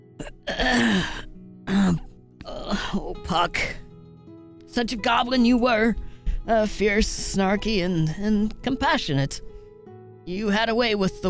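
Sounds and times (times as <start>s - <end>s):
speech: 0.2s - 1.3s, 2.7s - 3.8s, 4.8s - 9.5s, 10.3s - 11.2s
narrator voicing a male character clearing his throat: 0.2s - 3.0s.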